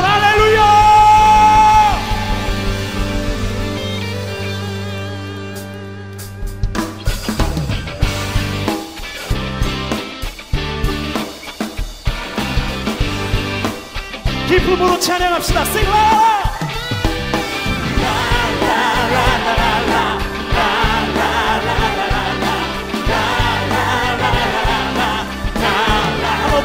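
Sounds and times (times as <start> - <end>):
whoops and shouts: 0.0 - 2.7
audience applause and cheering: 0.0 - 9.3, 15.8 - 26.6
instrumental music: 0.1 - 26.6
speech: 15.0 - 16.3.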